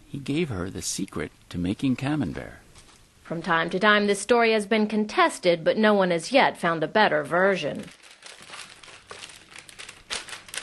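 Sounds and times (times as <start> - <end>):
speech: 0.1 - 2.6, 3.3 - 8.1
wax paper crinkling as newly made Camembert cheese is wrapped on a farm: 7.4 - 10.6.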